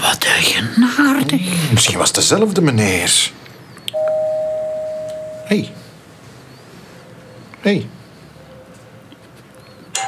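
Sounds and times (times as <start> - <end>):
speech: 0.2 - 3.4, 5.5 - 5.8, 7.6 - 8.0
faint hum: 3.4 - 8.6
doorbell ringing: 4.0 - 5.8.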